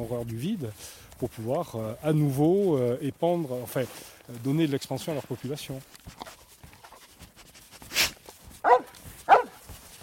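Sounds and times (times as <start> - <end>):
speech: 0.0 - 6.4
brief rustling burst: 0.0 - 10.0
dog barking: 8.6 - 9.6.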